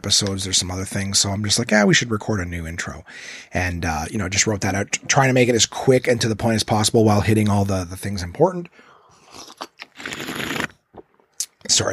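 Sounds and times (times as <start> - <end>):
speech: 0.0 - 10.3, 11.7 - 11.9
exaggerated loud slurp of a drink: 9.2 - 11.0.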